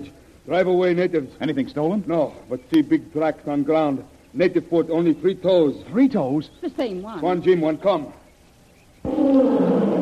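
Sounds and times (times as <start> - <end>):
speech: 0.0 - 8.2, 9.0 - 9.7
tiger roar: 9.0 - 10.0.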